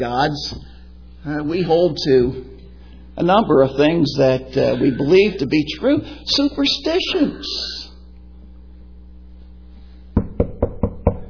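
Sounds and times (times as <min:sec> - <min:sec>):
speech: 0:00.0 - 0:02.5, 0:03.2 - 0:07.8
knocking on a wooden surface: 0:10.2 - 0:11.2.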